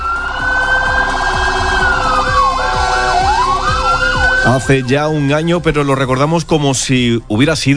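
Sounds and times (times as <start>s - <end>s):
fire engine sirens on the way to a fire at a mosque-cathedral in Spain: 0.0s - 5.6s
deep rumbling fire engine engine: 0.0s - 6.7s
speech: 4.5s - 7.7s.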